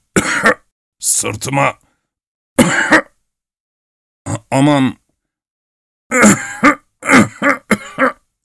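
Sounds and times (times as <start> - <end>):
old man coughing in a fit: 0.1 - 0.7, 2.6 - 3.2, 6.1 - 8.3
speech: 0.4 - 1.8, 4.5 - 5.0, 6.1 - 6.5.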